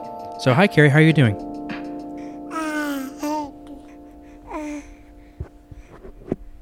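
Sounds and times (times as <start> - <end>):
speech: 0.4 - 1.5
baby boy babbling in sing-song bursts: 2.5 - 5.0.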